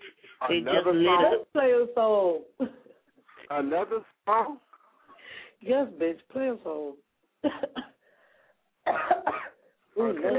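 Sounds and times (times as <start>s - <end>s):
speech: 0.4s - 2.8s, 3.5s - 4.7s, 5.6s - 7.9s, 10.0s - 10.3s
person coughing through a phone line: 8.9s - 9.6s.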